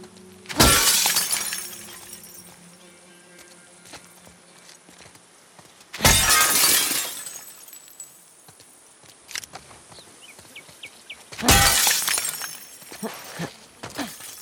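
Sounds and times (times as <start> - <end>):
large glass window panes shattering: 0.5 - 2.6, 6.0 - 8.2, 11.4 - 13.3, 14.0 - 14.4
tinkling glass debris settling: 0.6 - 2.7, 6.0 - 8.4, 11.5 - 14.4.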